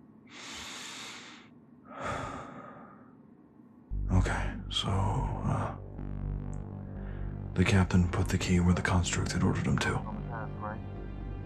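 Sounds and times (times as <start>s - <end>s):
deep breathing from a person struggling to focus: 0.3s - 3.3s, 6.8s - 7.5s
speech: 4.2s - 5.8s, 7.6s - 10.1s.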